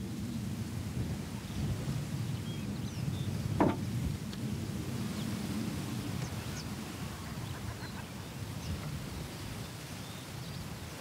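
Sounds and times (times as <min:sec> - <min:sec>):
wind along an island coast: 0:00.0 - 0:10.9
oystercatchers and redshanks calling on an island coast: 0:02.8 - 0:04.2, 0:06.1 - 0:09.1
sharp knock: 0:03.6 - 0:03.8.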